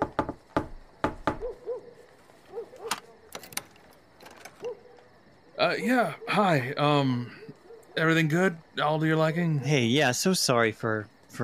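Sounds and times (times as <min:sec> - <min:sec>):
knocking on a shop door: 0:00.0 - 0:01.6
soft hooting calls: 0:01.4 - 0:03.4, 0:04.6 - 0:08.7
speech: 0:05.6 - 0:07.4, 0:08.0 - 0:11.4.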